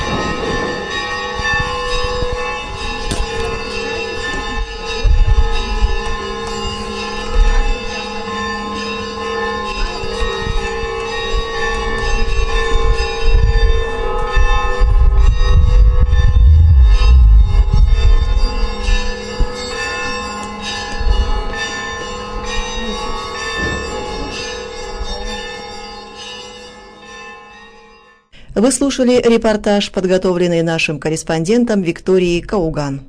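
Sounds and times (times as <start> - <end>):
church bells ringing: 0.0 - 15.3, 18.9 - 28.2
low rumble: 14.6 - 19.2
speech: 28.6 - 33.0.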